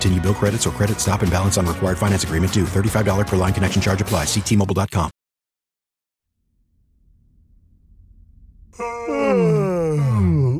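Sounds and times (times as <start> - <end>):
speech: 0.0 - 5.2, 8.8 - 9.6
two people yawning at once: 8.8 - 10.5.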